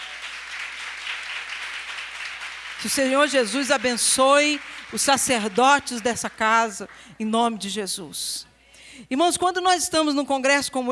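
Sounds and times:
applause from women in a church congregation during a church conference: 0.0s - 7.1s
speech: 2.8s - 10.8s.

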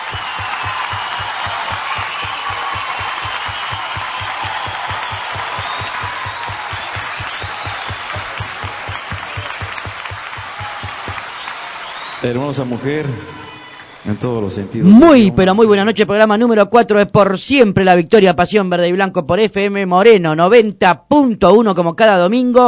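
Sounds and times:
regular low pulsing beat: 0.0s - 11.2s
audience applause for a singer: 0.0s - 14.6s
speech: 12.2s - 13.4s, 14.0s - 22.6s.

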